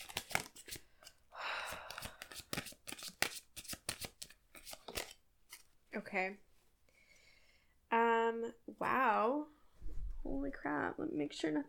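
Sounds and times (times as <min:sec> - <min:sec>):
deck of cards shuffling during a card reading: 0:00.0 - 0:05.7
speech: 0:06.0 - 0:06.5, 0:08.3 - 0:09.6, 0:10.2 - 0:11.6.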